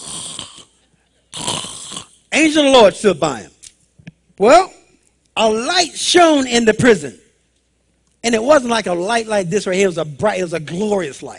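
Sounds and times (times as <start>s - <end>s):
voice imitating snoring: 0.0s - 2.2s
speech: 2.4s - 3.5s, 4.4s - 4.8s, 5.4s - 7.2s, 8.2s - 11.3s.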